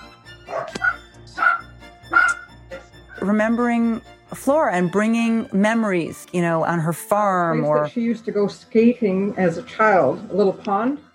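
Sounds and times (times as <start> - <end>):
dachshunds barking: 0.4 - 2.9
speech: 3.2 - 11.1.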